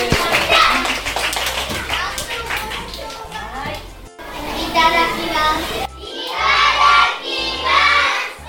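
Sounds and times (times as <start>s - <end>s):
crowd of students clapping: 0.0s - 4.0s
children's voices: 0.0s - 8.4s.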